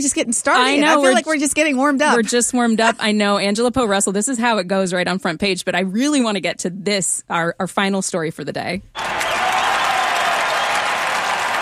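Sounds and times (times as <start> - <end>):
speech: 0.0 - 9.2
massive applause from a large audience: 9.0 - 11.5.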